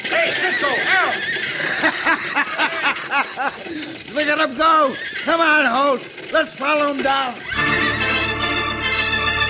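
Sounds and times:
laughter: 0.0s - 4.1s
horses neighing while pelted with rocks: 0.0s - 9.4s
speech: 3.4s - 7.8s.

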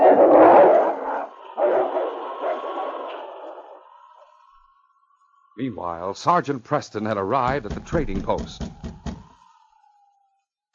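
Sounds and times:
pack of wolves growling and snarling angrily: 0.0s - 3.2s
speech: 5.6s - 9.0s.

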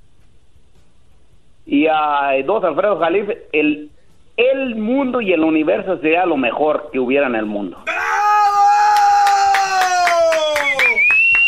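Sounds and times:
speech: 1.7s - 8.0s
steady evenly spaced hand claps: 8.8s - 11.4s.

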